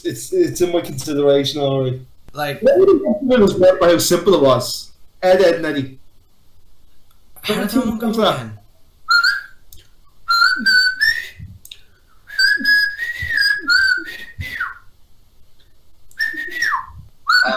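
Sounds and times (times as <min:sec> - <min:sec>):
speech: 0:00.0 - 0:06.0, 0:07.4 - 0:08.6
person whistling a bouncy little theme tune: 0:09.1 - 0:09.6, 0:10.3 - 0:11.6, 0:12.3 - 0:14.9, 0:16.2 - 0:17.5.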